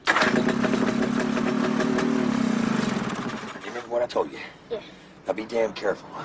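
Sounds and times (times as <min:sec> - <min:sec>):
engine starting and running: 0:00.0 - 0:03.9
speech: 0:04.1 - 0:06.2.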